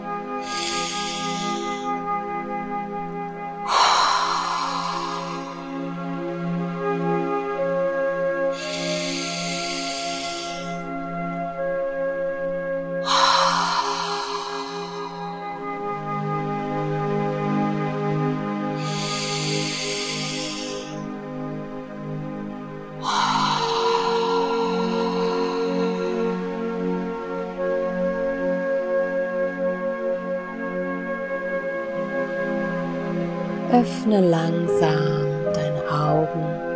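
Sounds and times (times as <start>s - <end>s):
gentle sustained music: 0.0s - 36.7s
slow deep breaths in through the nose and out through the mouth: 0.4s - 2.5s, 3.2s - 6.7s, 8.5s - 11.7s, 12.9s - 16.7s, 18.8s - 21.2s, 22.5s - 27.7s
speech: 33.8s - 35.2s.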